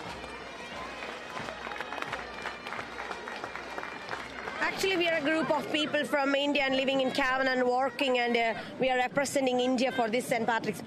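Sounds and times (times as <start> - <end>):
crowd applauding outdoors at a street parade: 0.0 - 6.4
indistinct cheering: 0.0 - 8.3
speech: 4.7 - 10.8.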